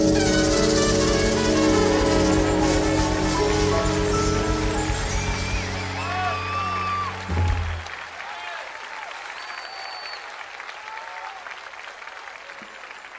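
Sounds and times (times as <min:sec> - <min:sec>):
crowd applauding: 0:00.0 - 0:13.1
whistles and cheers: 0:03.9 - 0:13.1
brief low thump: 0:07.3 - 0:07.9.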